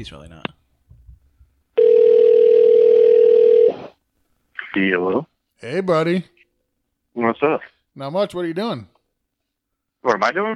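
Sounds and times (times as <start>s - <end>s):
speech: 0.0s - 0.6s, 4.8s - 6.3s, 7.2s - 8.9s, 10.0s - 10.5s
telephone dial tone: 1.8s - 3.8s.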